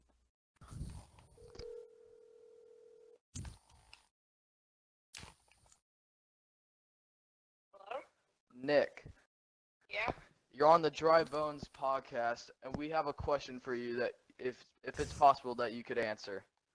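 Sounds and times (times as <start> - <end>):
telephone ringing tone: 1.3 - 3.2
speech: 8.6 - 9.2, 9.9 - 16.5.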